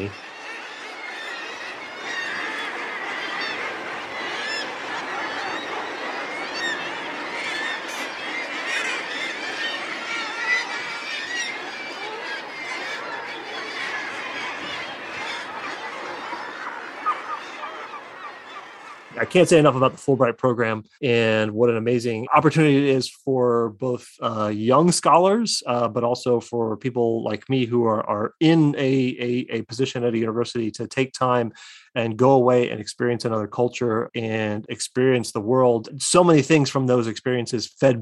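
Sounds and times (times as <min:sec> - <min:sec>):
speech: 0:00.0 - 0:00.2, 0:19.3 - 0:38.0
seabirds nesting on cliffs calling in a crowded colony: 0:00.0 - 0:20.0
laughter: 0:01.8 - 0:38.0.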